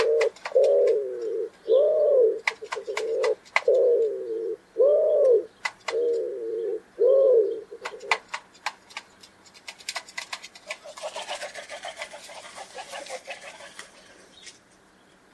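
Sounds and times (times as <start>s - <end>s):
bird cooing with low soft throaty coos: 0.0s - 8.2s, 10.7s - 14.5s
sharp clicking taps: 2.4s - 3.8s, 5.2s - 6.1s, 7.8s - 10.8s.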